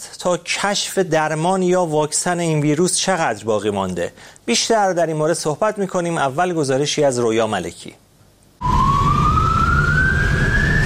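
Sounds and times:
speech: 0:00.2 - 0:08.0
ambulance siren wailing in a city during the coronavirus outbreak: 0:08.6 - 0:10.8.

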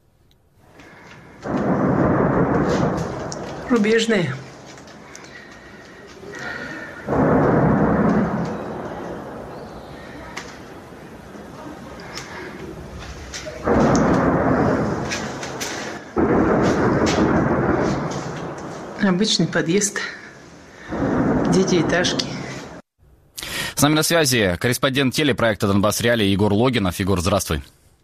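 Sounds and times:
heavy-weapons artillery fire on the Kreminna front section: 0:00.8 - 0:22.8
speech: 0:03.7 - 0:04.4, 0:19.2 - 0:20.2, 0:21.6 - 0:22.4, 0:23.8 - 0:27.8.

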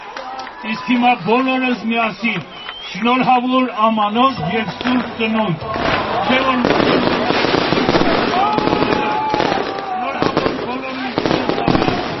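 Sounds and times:
crowd voices in a town square: 0:00.0 - 0:12.1
speech: 0:00.6 - 0:07.1
rising fireworks whistles: 0:02.4 - 0:03.2, 0:06.4 - 0:12.1
New Year fireworks crackling bangs over a town square: 0:04.5 - 0:12.1.

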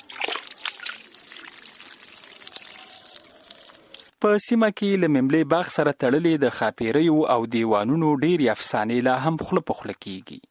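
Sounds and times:
water trickling and splashing from garden fountains and pools: 0:00.0 - 0:04.1
speech: 0:04.2 - 0:10.4.

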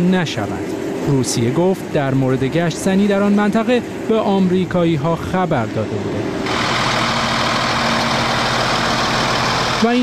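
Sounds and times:
speech: 0:00.0 - 0:06.6, 0:09.8 - 0:10.0
heavy military vehicle engines idling on a road near the border with Iraq: 0:00.0 - 0:10.0.

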